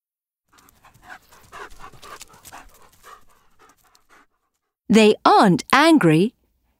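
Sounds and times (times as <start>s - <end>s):
several sled dogs panting: 0.5s - 4.8s
speech: 4.9s - 6.4s.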